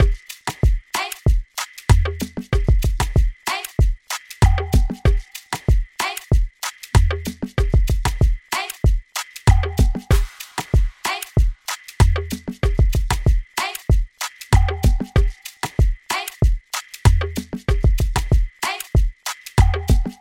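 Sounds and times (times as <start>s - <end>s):
modern afrobeat drum loop: 0.0s - 20.1s.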